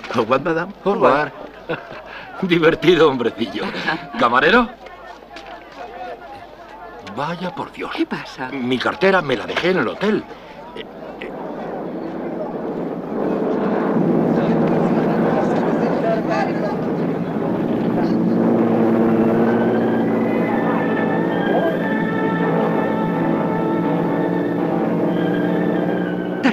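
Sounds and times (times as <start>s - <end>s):
indistinct voices murmuring: 0.0s - 26.5s
speech: 0.1s - 4.8s, 7.2s - 11.3s
laughter: 1.3s - 7.0s, 26.0s - 26.5s
airplane engine drone: 10.3s - 26.5s.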